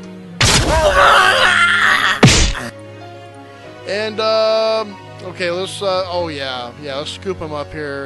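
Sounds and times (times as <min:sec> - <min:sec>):
man screaming while launched over a castle: 0:00.6 - 0:02.7
sharp impact thud: 0:02.2 - 0:02.6
speech: 0:03.9 - 0:08.0.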